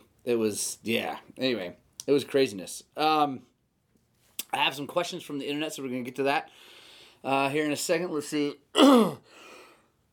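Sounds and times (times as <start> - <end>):
speech: 0.2 - 3.5, 4.5 - 9.5
raspy throat clearing: 8.8 - 9.2
person coughing: 8.8 - 9.3.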